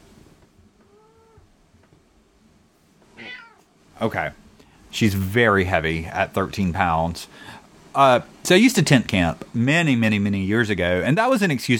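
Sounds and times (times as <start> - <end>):
low hum: 0.0 - 11.7
cat meowing: 0.8 - 1.5, 3.1 - 3.7
speech: 4.0 - 11.7.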